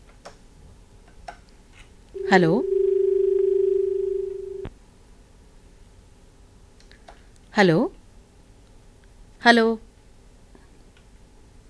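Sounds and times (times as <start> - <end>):
steady telephone line tone as a call-in line connects: 2.2 - 4.7
speech: 2.3 - 2.7, 7.6 - 8.0, 9.4 - 9.8.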